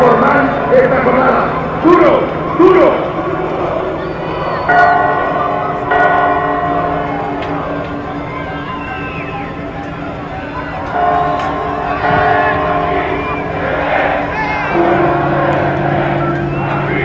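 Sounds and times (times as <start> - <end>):
busy outdoor crowd murmur: 0.0 - 17.0
church bells ringing: 0.0 - 17.0
faint traffic noise: 0.0 - 17.0
speech: 0.8 - 3.0.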